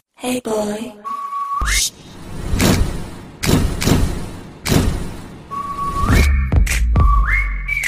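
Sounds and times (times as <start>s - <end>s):
speech: 0.2s - 2.1s
loud broadband thumps: 2.5s - 5.5s
person whistling short rising notes: 5.5s - 7.8s.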